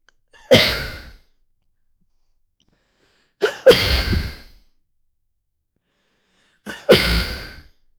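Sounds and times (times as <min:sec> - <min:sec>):
man sneezing: 0:00.4 - 0:01.2, 0:03.4 - 0:04.5, 0:06.7 - 0:07.7.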